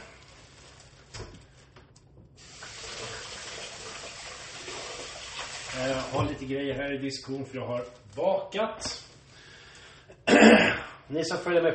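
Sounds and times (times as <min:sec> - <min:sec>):
tap water running while paws are rinsed: 0:02.3 - 0:06.4
speech: 0:05.8 - 0:09.0, 0:11.1 - 0:11.7.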